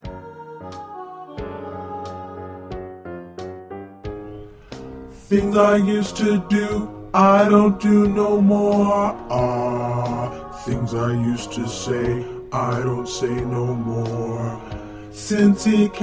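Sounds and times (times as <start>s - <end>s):
bass voice singing in SATB choral part: 5.1s - 16.0s.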